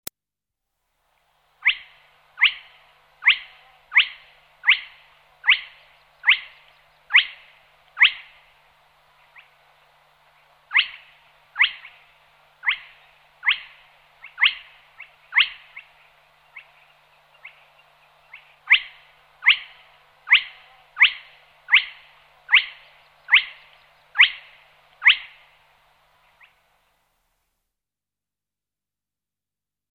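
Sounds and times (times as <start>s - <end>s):
spotted crake Porzana porzana calling: 1.6s - 8.6s, 9.2s - 9.6s, 10.7s - 25.6s.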